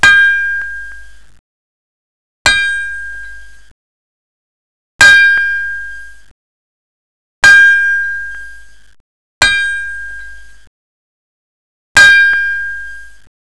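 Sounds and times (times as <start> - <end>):
percussion: 0.0 - 1.1, 2.5 - 3.6, 5.0 - 6.2, 9.4 - 10.4, 12.0 - 13.0.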